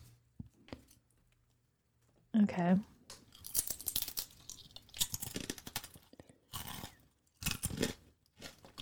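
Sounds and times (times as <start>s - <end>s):
speech: 2.5s - 2.9s
chewing dense crunchy food: 3.1s - 8.7s.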